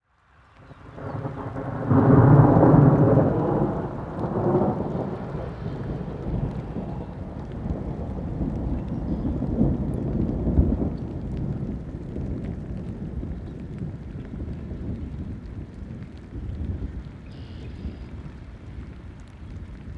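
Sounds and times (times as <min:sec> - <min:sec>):
rain during thunderstorm in Illinois USA: 0:00.0 - 0:19.9
thunder in Illinois USA: 0:00.7 - 0:18.1.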